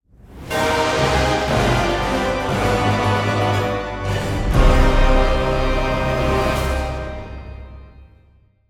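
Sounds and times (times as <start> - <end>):
victory theme music: 0.3 - 8.6.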